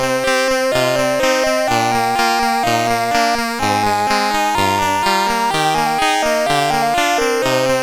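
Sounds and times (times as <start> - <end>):
concerto music: 0.2 - 7.7.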